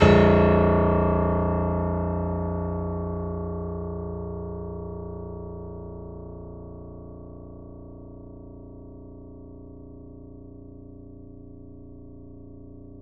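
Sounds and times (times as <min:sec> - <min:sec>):
grand piano note played fortissimo: 0:00.0 - 0:03.7.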